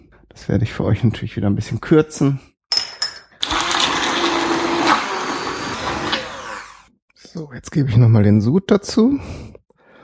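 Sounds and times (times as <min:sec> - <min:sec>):
speech: 0:00.4 - 0:02.5, 0:07.4 - 0:09.6
kitchen blender running: 0:03.4 - 0:06.9.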